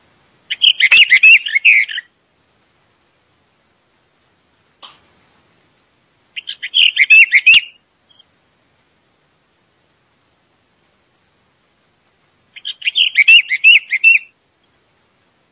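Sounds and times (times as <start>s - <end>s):
Western Orphean Warbler song: 0.0s - 2.2s, 5.8s - 8.4s, 9.0s - 15.5s.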